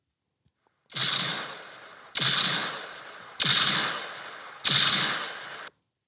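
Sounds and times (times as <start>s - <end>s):
handgun shots from a video game: 1.0s - 5.7s.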